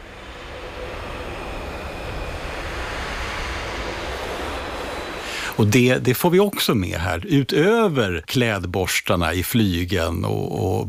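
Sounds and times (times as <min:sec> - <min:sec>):
brass players blowing air through instruments without a tone: 0:05.2 - 0:05.7
speech: 0:05.6 - 0:10.8.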